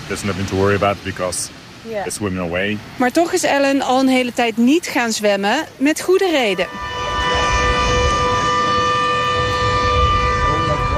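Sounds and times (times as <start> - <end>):
speech: 0.1 - 7.0
shark alarm siren at a beach: 6.4 - 10.9.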